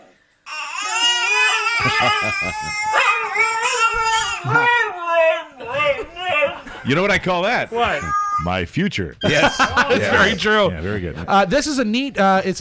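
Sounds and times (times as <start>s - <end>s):
baby wailing: 0.5s - 6.6s, 7.7s - 8.5s
dog howling: 1.1s - 6.6s
laughter: 1.7s - 3.0s, 4.3s - 4.8s, 5.6s - 7.2s, 9.2s - 11.5s
speech: 1.8s - 3.0s, 4.4s - 6.2s, 6.8s - 12.6s.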